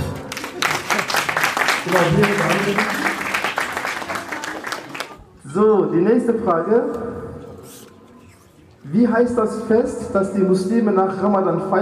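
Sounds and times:
audience applause: 0.0s - 5.3s
speech: 1.8s - 3.1s, 5.5s - 7.3s, 8.9s - 11.8s.

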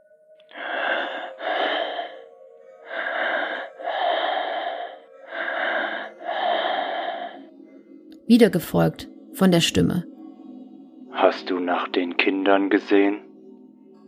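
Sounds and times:
heavy raspy breathing through a telephone line: 0.5s - 7.8s
speech: 8.3s - 10.1s, 11.2s - 13.3s.

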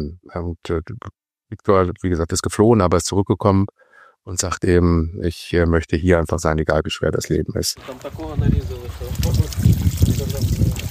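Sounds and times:
speech: 0.0s - 10.8s
water trickling and splashing at a central village water point: 7.8s - 10.9s.

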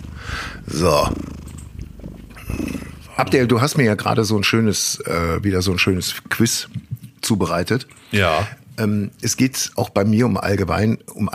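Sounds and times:
sleeping cat purring: 0.0s - 3.5s
speech: 0.7s - 1.3s, 3.2s - 11.3s.

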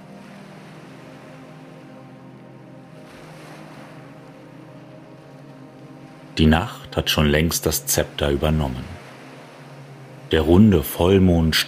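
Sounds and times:
ocean surf churning below a rocky ledge: 0.0s - 11.6s
speech: 6.4s - 9.0s, 10.3s - 11.6s.

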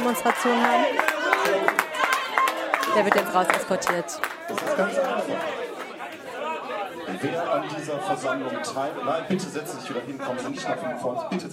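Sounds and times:
scattered clapping from an audience: 0.0s - 6.7s
murmur of voices: 0.0s - 11.5s
speech: 0.1s - 1.8s, 2.9s - 5.6s, 7.1s - 11.5s.

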